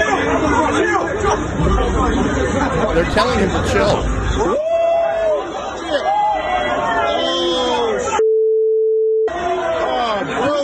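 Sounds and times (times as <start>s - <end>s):
crowd excited chatter: 0.1s - 8.1s
crowd shouting in reaction to a knockout punch: 2.9s - 8.2s, 9.3s - 10.5s
speech: 3.0s - 4.5s.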